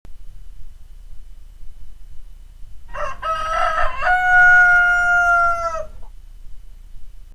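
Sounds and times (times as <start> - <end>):
alarm ringtone of rooster crowing: 2.9 - 6.1.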